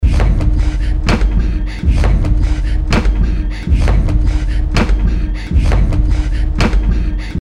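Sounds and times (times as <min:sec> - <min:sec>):
pulsing breath loop: 0:00.0 - 0:07.3.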